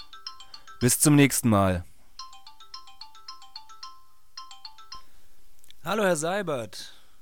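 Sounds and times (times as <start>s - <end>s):
phone ringtone with repeated electronic tones: 0.0s - 1.4s, 2.2s - 5.4s
speech: 0.8s - 1.9s, 5.9s - 7.0s.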